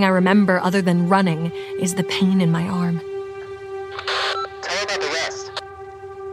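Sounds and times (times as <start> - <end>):
speech: 0.0 - 3.1
walkie-talkie static crackle: 3.9 - 5.6
garbled radio voice: 4.1 - 5.6.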